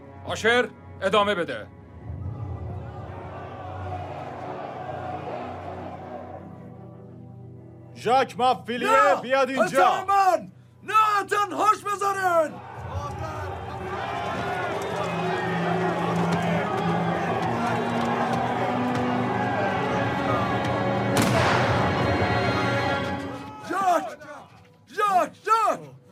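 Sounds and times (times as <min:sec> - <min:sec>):
speech: 0:00.3 - 0:01.8, 0:08.0 - 0:13.3
people shouting: 0:02.4 - 0:06.5, 0:08.8 - 0:10.3, 0:12.0 - 0:25.8
gunshot as someone is shot: 0:21.2 - 0:22.1.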